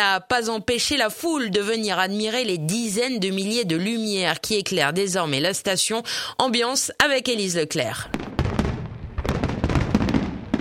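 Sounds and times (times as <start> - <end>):
speech: 0.0 - 8.3
fireworks bangs and pops at the launch of the Christmas illuminations in Le Touquet: 8.1 - 10.5.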